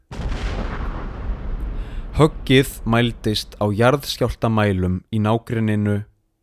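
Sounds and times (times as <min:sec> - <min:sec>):
massive explosion of aircraft crashing into cliff: 0:00.0 - 0:04.8
heavy roaring rumble: 0:00.2 - 0:04.4
speech: 0:02.2 - 0:06.1.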